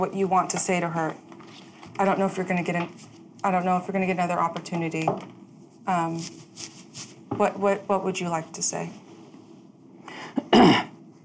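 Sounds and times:
speech: 0:00.0 - 0:06.8, 0:07.4 - 0:09.0
person coughing: 0:10.2 - 0:11.0.

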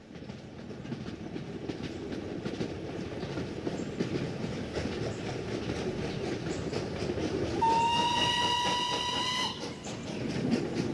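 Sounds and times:
train rolling along railroad tracks on the north side of the New River: 0:00.0 - 0:10.9
train whistle: 0:07.6 - 0:09.9.

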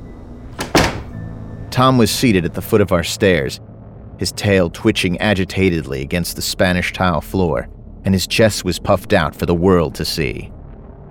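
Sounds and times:
door being kicked shut by a person turning back into a house: 0:00.6 - 0:01.2
speech: 0:01.8 - 0:10.6.

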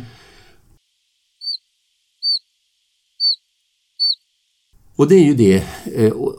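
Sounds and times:
chiffchaff autumn call with thin, straight, plaintive high peeps: 0:01.4 - 0:02.5, 0:03.2 - 0:04.3
speech: 0:05.0 - 0:06.3.

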